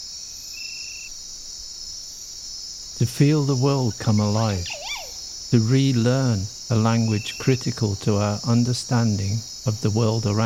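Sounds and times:
cicadas hissing: 0.0s - 10.4s
speech: 3.0s - 4.8s, 5.5s - 10.4s
thin high tone: 4.0s - 5.2s.

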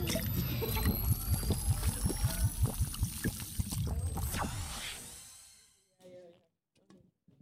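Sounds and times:
liquid sloshing: 0.0s - 4.3s
people chugging drinks: 0.0s - 4.3s.

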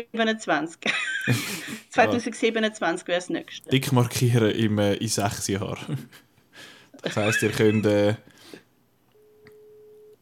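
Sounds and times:
speech: 0.0s - 8.6s
laughter: 0.9s - 1.9s, 7.1s - 8.1s
telephone ringing with a steady electronic tone: 7.2s - 8.0s, 9.2s - 10.1s.

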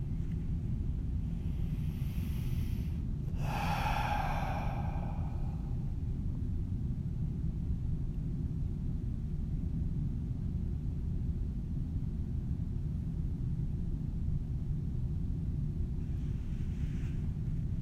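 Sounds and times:
low rumble: 0.0s - 17.7s
deep breath in through the nose and out through the mouth: 1.2s - 6.2s, 16.1s - 17.5s.

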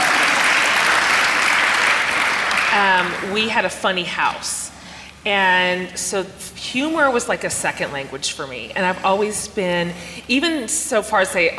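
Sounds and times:
room full of people applauding: 0.0s - 3.3s
speech: 2.8s - 11.5s.

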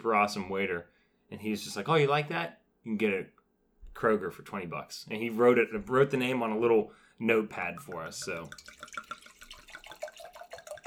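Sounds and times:
speech: 0.0s - 3.4s, 4.0s - 9.0s
red wine pouring into a glass: 7.4s - 10.8s.

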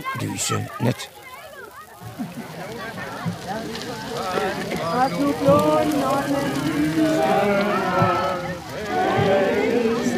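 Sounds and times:
bonfire crackling and roaring outdoors: 0.0s - 10.1s
outdoor crowd murmuring and talking: 0.0s - 10.1s
speech: 0.1s - 1.2s, 2.1s - 10.1s.

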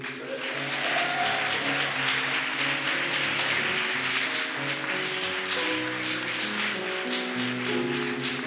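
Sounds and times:
crowd applauding: 0.0s - 8.4s
tuneful musical accompaniment: 0.0s - 8.4s.

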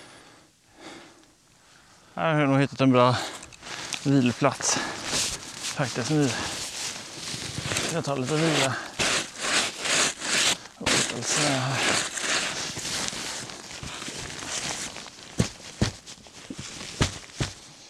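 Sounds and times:
speech: 2.2s - 3.3s, 4.0s - 4.9s, 5.8s - 6.6s, 7.9s - 8.9s, 11.2s - 12.1s
footsteps of someone hiking through the Uppland countryside: 3.6s - 10.0s, 11.8s - 17.7s.

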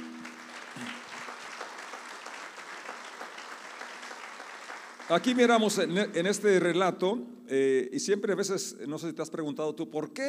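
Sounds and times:
audience applause: 0.0s - 5.6s
speech: 5.1s - 10.2s.

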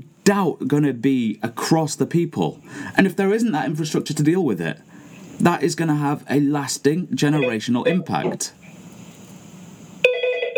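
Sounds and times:
low hum: 0.0s - 10.3s
speech: 0.2s - 8.6s
electronic telephone ring with multi-tone trill: 7.4s - 8.2s, 10.0s - 10.5s.

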